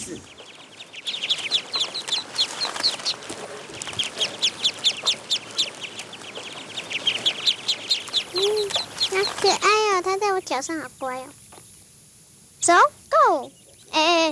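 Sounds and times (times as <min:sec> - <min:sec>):
speech: 0:00.0 - 0:00.4, 0:10.0 - 0:11.4, 0:12.7 - 0:14.3
flock of ducks quacking in a rice paddy: 0:00.0 - 0:10.8.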